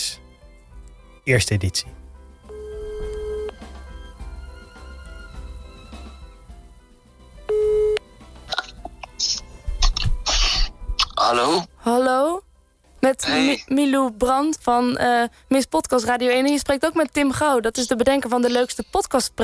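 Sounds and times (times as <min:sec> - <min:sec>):
soft music: 0:00.0 - 0:19.4
speech: 0:01.3 - 0:02.0, 0:13.7 - 0:19.4
telephone ringback tone while phoning someone: 0:02.5 - 0:03.6, 0:07.5 - 0:08.0.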